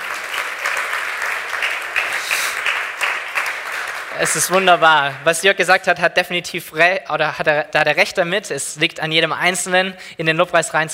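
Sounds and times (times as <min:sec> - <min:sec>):
audience applauding for a worship band: 0:00.0 - 0:05.5
speech: 0:04.2 - 0:10.9.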